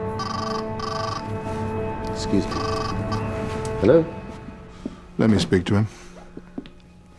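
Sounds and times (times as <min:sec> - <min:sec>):
mobile phone ringing with tonal electronic ringtone: 0:00.2 - 0:01.4, 0:02.4 - 0:03.4
speech: 0:02.2 - 0:02.7, 0:03.8 - 0:04.2, 0:05.2 - 0:06.0.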